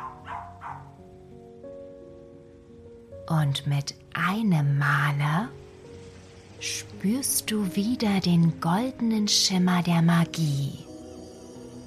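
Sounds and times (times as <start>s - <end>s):
dog barking: 0.0s - 1.1s
sustained musical drone: 0.0s - 11.8s
speech: 3.3s - 5.6s, 6.6s - 10.9s.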